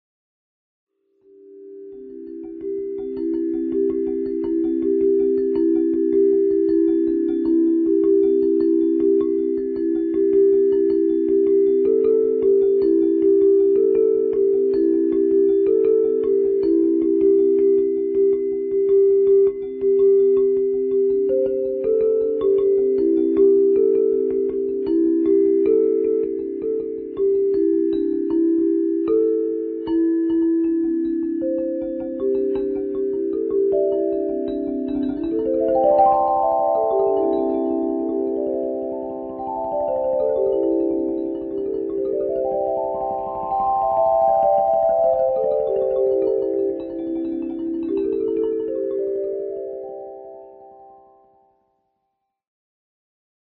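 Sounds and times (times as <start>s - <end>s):
metallophone: 1.3s - 51.3s.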